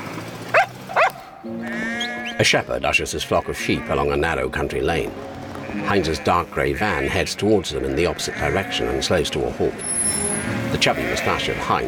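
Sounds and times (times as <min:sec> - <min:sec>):
small terrier barking at a departing van in the street: 0:00.5 - 0:01.5
speech: 0:01.4 - 0:11.8.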